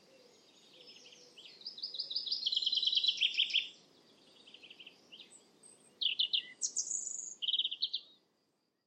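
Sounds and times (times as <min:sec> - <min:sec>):
European robin song: 0:00.0 - 0:08.2.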